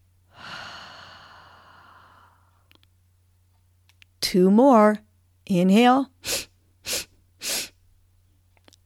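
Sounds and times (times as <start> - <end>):
low steady hum: 0.0 - 8.8
long breathy exhale during a breathing exercise: 0.3 - 2.6
speech: 4.2 - 6.4.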